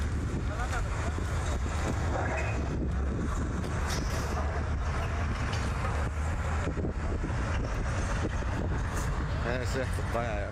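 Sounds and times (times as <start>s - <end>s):
bulldozer heavy engine rumbling while clearing a road: 0.0s - 10.5s
gusty outdoor noise: 0.0s - 10.5s
speech: 9.8s - 10.5s.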